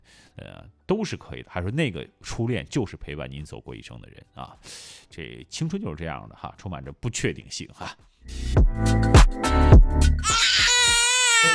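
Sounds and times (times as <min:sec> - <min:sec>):
speech: 0:00.4 - 0:10.4, 0:11.4 - 0:11.5
baby crying with choppy sobs and high-pitched wail: 0:10.2 - 0:11.5.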